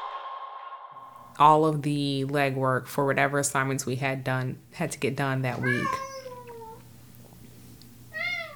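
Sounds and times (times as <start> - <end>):
low steady hum: 1.1 - 8.5
speech: 1.4 - 6.1
cat meowing: 5.5 - 6.8, 8.1 - 8.5.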